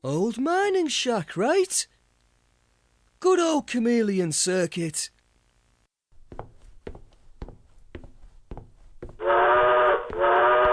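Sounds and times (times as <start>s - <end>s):
speech: 0.0s - 2.0s, 3.2s - 5.2s
steam train whistle blasting: 9.2s - 10.7s.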